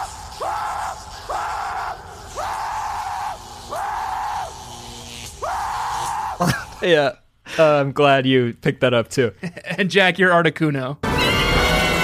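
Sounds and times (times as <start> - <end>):
person screaming loud drawn-out screeching screams mimicking a creature's cry: 0.0 - 4.7, 5.3 - 6.8
speech: 6.4 - 11.0.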